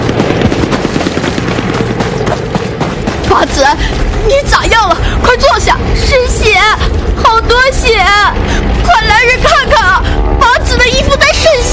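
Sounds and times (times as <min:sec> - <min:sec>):
machine gun firing at a ferry crossing during a battle: 0:00.0 - 0:04.2
speech: 0:03.4 - 0:11.7.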